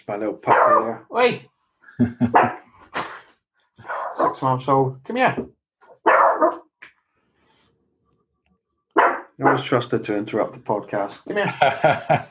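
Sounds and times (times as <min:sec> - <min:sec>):
speech: 0:00.0 - 0:02.6, 0:04.3 - 0:05.6, 0:09.4 - 0:12.2
little Shih Tzu puppy giving high yappy barks: 0:00.5 - 0:00.9, 0:02.2 - 0:02.6, 0:03.8 - 0:04.4, 0:05.9 - 0:06.7, 0:09.0 - 0:09.7
laughter: 0:01.9 - 0:03.2, 0:11.4 - 0:12.2.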